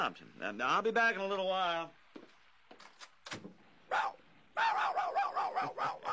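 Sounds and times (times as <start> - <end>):
speech: 0.0 - 2.0
small dog barking: 3.9 - 6.1.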